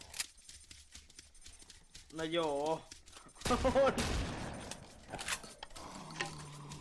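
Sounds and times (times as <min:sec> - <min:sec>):
speech: 0:02.1 - 0:04.3, 0:05.1 - 0:05.4
video game shotgun firing in automatic bursts: 0:03.4 - 0:04.9.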